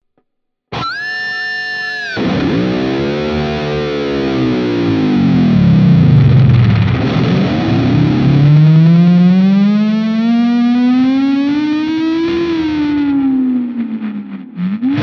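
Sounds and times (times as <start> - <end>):
AZ2407F lead tremolo tone: 2.2 - 15.0.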